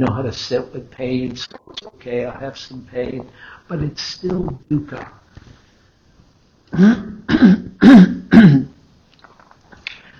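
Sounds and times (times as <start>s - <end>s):
speech: 0.0s - 5.6s, 6.7s - 8.7s
rough forceful throat clearing: 6.7s - 8.8s.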